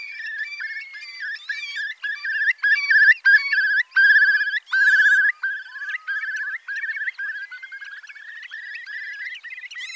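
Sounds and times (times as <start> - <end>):
curlew calls: 0.0 - 9.9.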